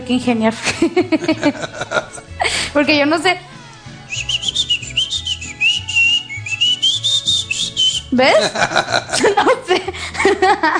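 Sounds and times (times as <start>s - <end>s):
speech: 0.1s - 2.0s, 2.6s - 3.5s, 8.1s - 10.7s
laughter: 0.6s - 2.7s, 8.2s - 10.7s
person whistling shakily: 4.1s - 8.2s.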